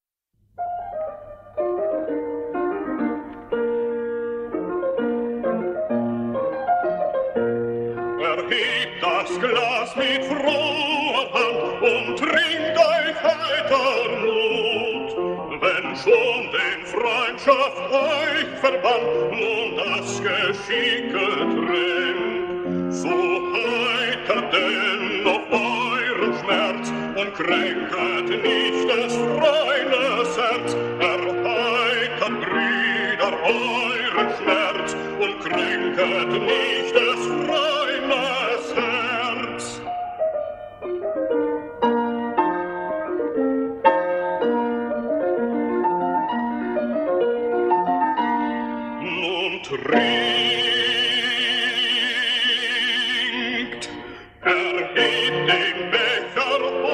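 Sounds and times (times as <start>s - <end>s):
piano accompaniment: 0.4s - 56.9s
solo voice singing a drinking song: 8.2s - 39.9s, 49.0s - 56.9s.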